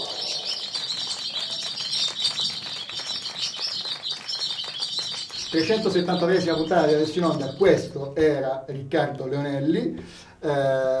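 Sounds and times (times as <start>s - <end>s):
chorus of swallows chirping and twittering: 0.0s - 7.8s
speech: 5.5s - 10.9s.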